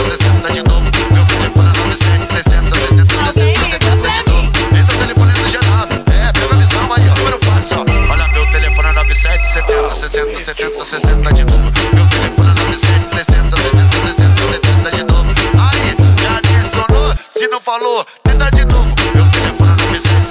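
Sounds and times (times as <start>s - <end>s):
loud pounding dance beat: 0.0s - 17.6s, 18.3s - 20.2s
chirpy phone ringtone melody: 7.7s - 11.3s, 17.1s - 18.2s
steady held electronic tone: 7.9s - 11.2s.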